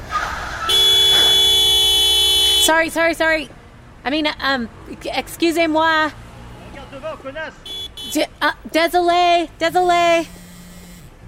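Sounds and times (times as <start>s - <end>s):
street noise: 0.0s - 11.2s
car horn honking in city traffic: 0.7s - 3.0s, 7.6s - 8.3s
speech: 2.7s - 6.2s, 7.0s - 10.4s.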